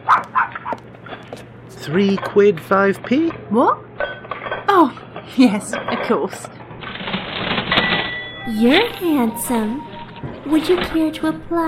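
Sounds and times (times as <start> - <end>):
small dog yapping: 0.0 - 0.8
speech: 1.8 - 3.9, 4.8 - 6.6, 8.5 - 11.6.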